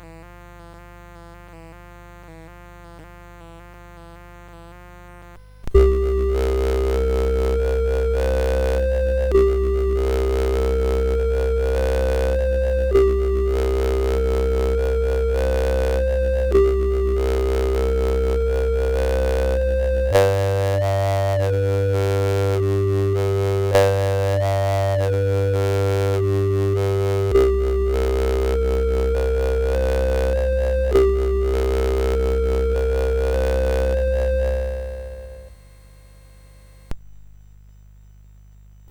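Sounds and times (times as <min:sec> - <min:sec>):
spacey synth sound: 0:05.7 - 0:35.6.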